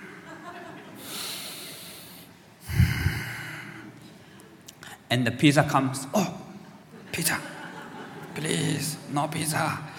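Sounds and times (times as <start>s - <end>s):
laughter: 0.1s - 1.1s, 6.9s - 8.9s
deep breathing during meditation: 1.0s - 4.2s
rough snort-like rush of air through the nose: 1.7s - 3.4s
speech: 5.1s - 6.3s, 8.4s - 9.9s.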